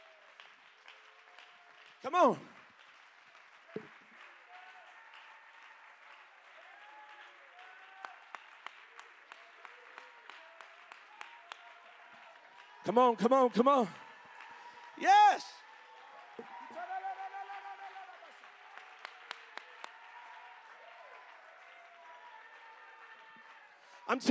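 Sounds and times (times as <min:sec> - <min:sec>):
large crowd clapping and applauding: 0:00.0 - 0:24.2
man calling out excitedly: 0:02.0 - 0:02.5, 0:12.9 - 0:13.9, 0:15.0 - 0:15.6
speech: 0:02.0 - 0:02.6, 0:12.9 - 0:14.0, 0:15.0 - 0:15.5.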